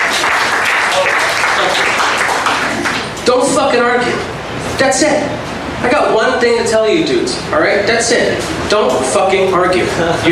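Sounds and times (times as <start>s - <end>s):
audience at a comedy show clapping: 0.0s - 3.2s
speech: 3.3s - 10.3s.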